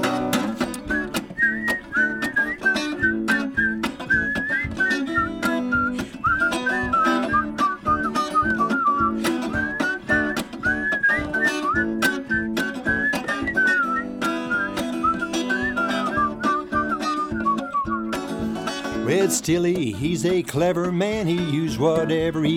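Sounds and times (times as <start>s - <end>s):
rhythmic backing of plucked strings: 0.0s - 22.5s
sharp percussive clicks: 0.2s - 1.4s
group whistling a bright wandering tune: 0.8s - 18.5s
speech: 19.4s - 22.5s.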